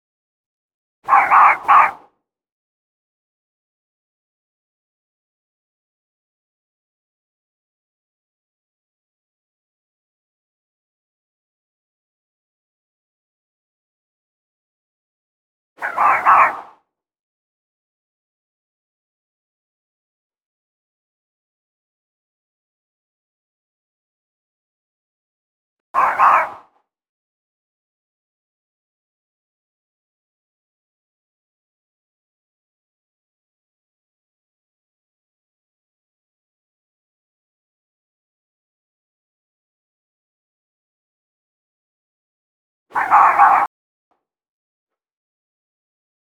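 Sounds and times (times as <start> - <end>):
distant fox barking: 1.1 - 2.1, 15.8 - 16.8, 26.0 - 26.7, 42.9 - 43.7.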